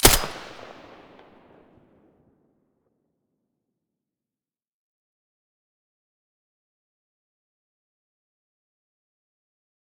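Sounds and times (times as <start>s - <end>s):
silenced M4A1 rifle shots in stereo: 0.0s - 1.6s.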